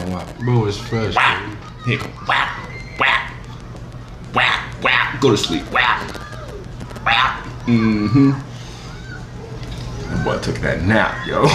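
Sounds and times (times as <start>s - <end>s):
low steady hum: 0.0s - 11.5s
speech: 0.2s - 2.6s, 5.2s - 6.2s, 7.1s - 8.5s, 10.2s - 11.5s
dog barking: 1.2s - 1.5s, 2.2s - 3.4s, 4.4s - 6.1s, 7.1s - 7.5s.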